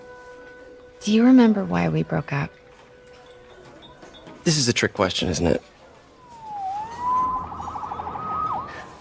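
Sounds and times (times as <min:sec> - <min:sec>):
speech: 0:01.0 - 0:02.6, 0:04.5 - 0:05.7
emergency vehicle siren wailing and yelping: 0:06.2 - 0:08.9.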